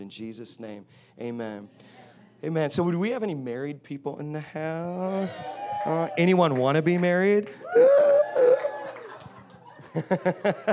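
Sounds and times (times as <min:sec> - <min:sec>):
speech: 0:00.0 - 0:08.6, 0:10.0 - 0:10.7
audience member screaming in excitement: 0:07.6 - 0:08.9
laughter: 0:07.8 - 0:10.7.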